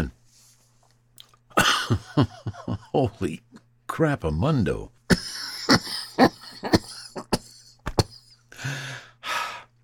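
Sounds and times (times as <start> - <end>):
person coughing after taking a cannabis hit: 1.6 - 2.0, 5.1 - 8.4
speech: 1.6 - 5.0.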